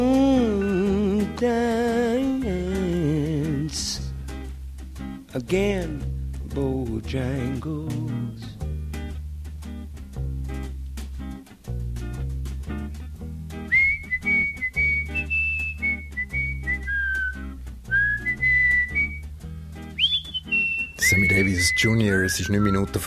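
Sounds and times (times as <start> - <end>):
instrumental musical backing: 0.0 - 23.0
man whistling a lilting melody: 0.4 - 1.4, 13.6 - 19.3, 19.9 - 23.0
speech: 5.4 - 8.5, 21.8 - 23.0.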